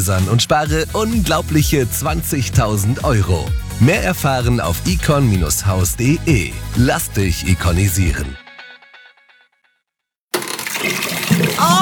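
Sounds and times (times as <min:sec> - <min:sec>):
speech: 0:00.0 - 0:08.4
water gushing from an overflowing toilet and sink: 0:10.3 - 0:11.8.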